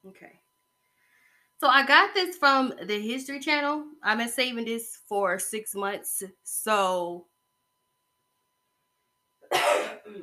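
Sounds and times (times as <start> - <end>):
speech: 1.6 - 7.3, 9.5 - 10.2
person coughing: 9.4 - 10.2.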